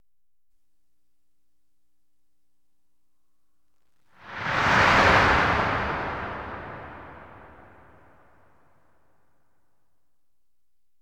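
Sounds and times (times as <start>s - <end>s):
whoosh on dissolve transition: 4.2s - 8.3s.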